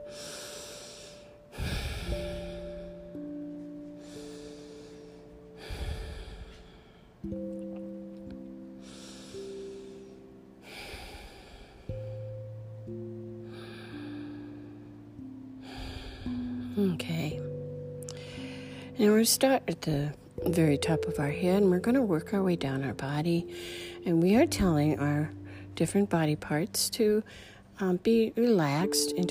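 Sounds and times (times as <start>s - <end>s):
deep cleansing breaths during a guided relaxation exercise: 0.0s - 7.3s, 8.7s - 12.5s, 13.4s - 16.8s, 18.0s - 19.0s, 23.5s - 24.0s, 27.2s - 27.8s
soft sustained musical tones: 0.0s - 29.2s
speech: 7.3s - 7.6s, 16.8s - 17.4s, 19.0s - 29.2s.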